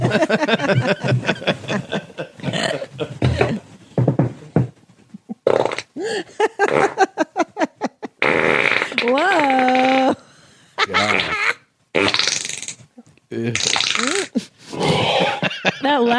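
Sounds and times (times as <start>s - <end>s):
snickering laughter: 0.0s - 3.5s, 5.1s - 8.2s, 10.8s - 11.6s, 15.1s - 16.0s
speech: 0.1s - 1.0s
loud drawn-out fart: 5.4s - 5.9s, 6.7s - 7.0s, 8.2s - 10.1s, 12.0s - 12.8s, 13.5s - 15.1s
excited voices: 9.1s - 10.2s, 10.8s - 11.6s.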